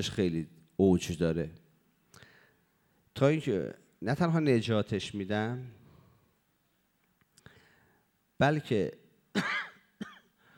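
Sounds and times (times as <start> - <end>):
speech: 0.0 - 1.6, 3.2 - 5.8, 8.4 - 9.6
person coughing set off by cough medicine: 9.4 - 10.4.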